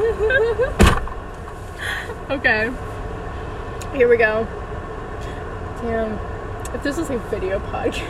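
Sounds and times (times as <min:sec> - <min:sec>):
car door slamming shut: 0:00.7 - 0:01.6
speech: 0:02.3 - 0:02.9, 0:03.9 - 0:04.6, 0:05.8 - 0:08.0.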